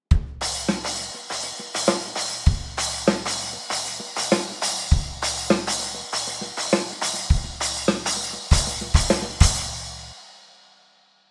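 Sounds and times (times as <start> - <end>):
splash cymbal: 0.4 - 11.2.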